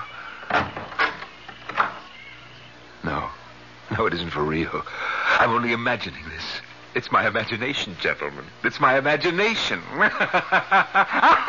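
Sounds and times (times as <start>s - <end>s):
closet door opening: 0.4s - 2.1s
speech: 4.0s - 11.4s
laughter: 9.2s - 11.4s.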